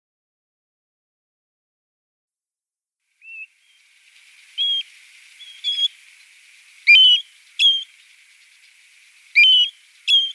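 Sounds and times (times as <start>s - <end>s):
European golden plover whistled calls: 3.2s - 3.8s, 4.6s - 6.0s, 6.8s - 10.3s.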